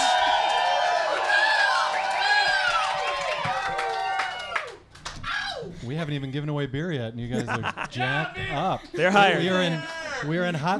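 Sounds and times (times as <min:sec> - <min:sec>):
scattered clapping: 0:00.0 - 0:05.2
large live festival crowd cheering and whooping in Hot Springs, North Carolina: 0:00.0 - 0:05.6
speech: 0:06.0 - 0:10.7
laughter: 0:07.3 - 0:10.7.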